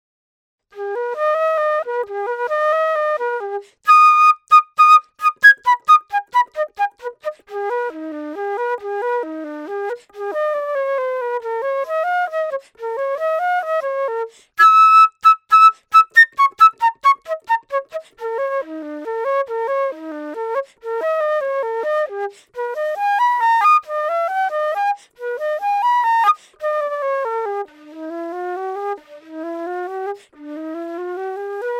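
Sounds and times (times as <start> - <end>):
flute: 0.7 - 31.7.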